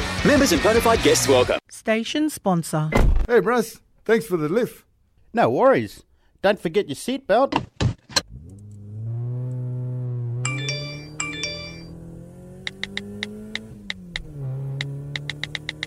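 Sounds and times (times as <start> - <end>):
speech: 0.2 - 7.7
steady car engine hum: 8.2 - 15.8
mobile phone ringing in short melodic bursts inside a moving car: 10.5 - 12.0
sharp ticking clicks: 12.6 - 15.8.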